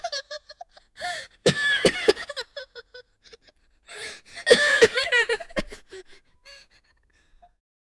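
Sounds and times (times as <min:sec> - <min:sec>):
children gasping in worry: 0:01.0 - 0:01.4, 0:03.9 - 0:07.4.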